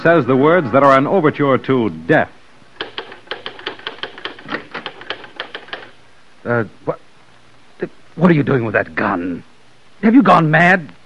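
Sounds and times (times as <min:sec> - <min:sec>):
speech: 0:00.0 - 0:02.4, 0:06.4 - 0:07.0, 0:07.8 - 0:11.0
typewriter keystrokes clacking: 0:02.8 - 0:06.0.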